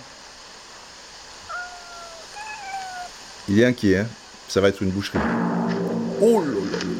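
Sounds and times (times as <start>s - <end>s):
steady hiss: 0.0s - 6.9s
cat meowing: 1.5s - 3.2s
speech: 3.5s - 5.5s, 6.2s - 6.9s.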